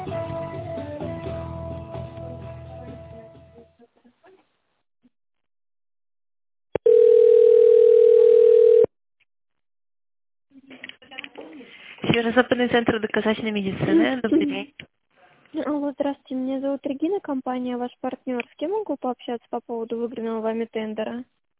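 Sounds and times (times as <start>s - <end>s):
telephone ringing tone while waiting to be connected to a secretary: 6.8s - 8.9s
speech: 12.2s - 14.8s, 15.6s - 21.4s.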